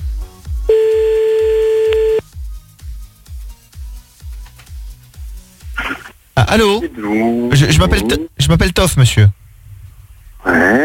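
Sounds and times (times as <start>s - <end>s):
rhythmic thumping beat: 0.1s - 2.6s
steady electronic telephone tone while a call is redialled: 0.7s - 2.2s
speech: 6.5s - 9.4s, 10.4s - 10.8s.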